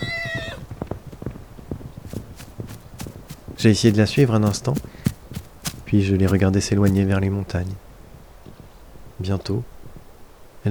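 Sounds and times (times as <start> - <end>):
horse whinny: 0.0 - 0.7
animal hoofbeats galloping: 0.0 - 7.3
speech: 3.6 - 5.0, 5.9 - 7.8, 9.2 - 9.7.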